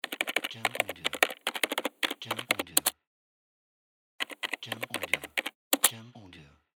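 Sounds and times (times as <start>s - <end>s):
keyboard clicks: 0.0s - 3.0s, 4.2s - 5.9s.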